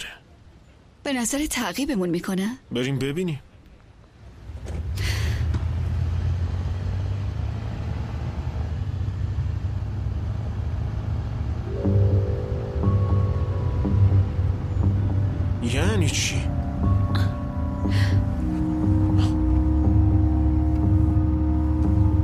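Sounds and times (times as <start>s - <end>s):
speech: 1.0s - 3.5s
car engine rumble while driving: 4.1s - 22.2s.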